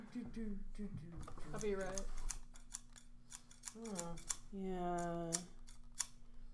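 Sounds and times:
speech: 0.3s - 2.3s, 3.7s - 5.5s
scissors snipping and clicking: 1.2s - 6.2s.

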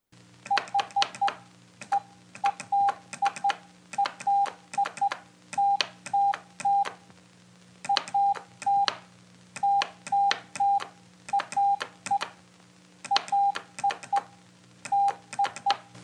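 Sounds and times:
sharp clicks with each beep: 0.4s - 7.0s, 7.8s - 12.4s, 13.0s - 15.9s
high tone keying Morse code beeps: 0.5s - 6.9s, 7.9s - 8.9s, 9.6s - 12.2s, 13.1s - 14.3s, 14.9s - 15.7s.

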